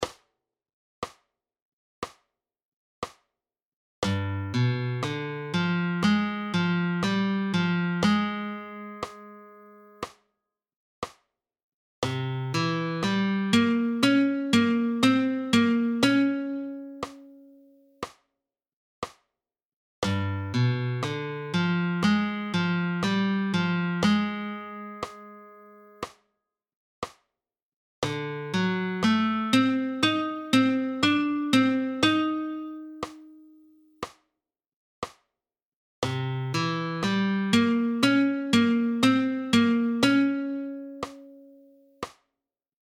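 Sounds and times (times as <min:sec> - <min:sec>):
flamenco guitar alzapua: 0:04.3 - 0:09.4, 0:12.5 - 0:17.3, 0:20.1 - 0:25.5, 0:28.1 - 0:33.4, 0:36.6 - 0:41.6.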